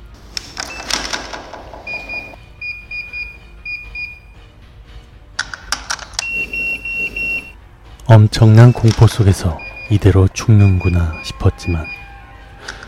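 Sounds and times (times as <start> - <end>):
digital door lock keypad beeping as password is tapped: 0.6 - 1.2, 1.8 - 4.4, 6.1 - 7.6, 8.6 - 12.1
speech: 8.1 - 12.0.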